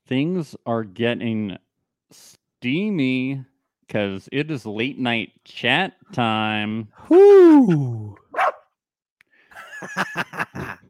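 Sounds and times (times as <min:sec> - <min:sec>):
speech: 0:00.1 - 0:08.5, 0:09.8 - 0:10.8
dog's high whiny barks and yips: 0:08.3 - 0:08.6
dog barking: 0:08.3 - 0:08.7
laughter: 0:09.6 - 0:10.8.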